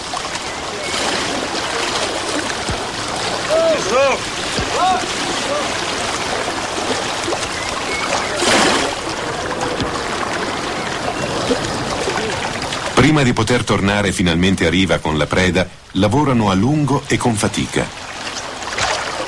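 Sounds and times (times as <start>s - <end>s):
loud splash in water: 0.0s - 13.2s, 18.2s - 19.2s
water sloshing and lapping around a motor fishing boat on a freshwater sea in Galilee: 0.0s - 13.4s, 17.4s - 19.2s
speech: 13.1s - 18.1s.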